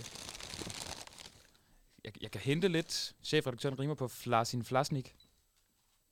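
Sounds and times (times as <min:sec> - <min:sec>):
thick newspaper paper crumpling: 0:00.0 - 0:01.5
speech: 0:02.0 - 0:05.2.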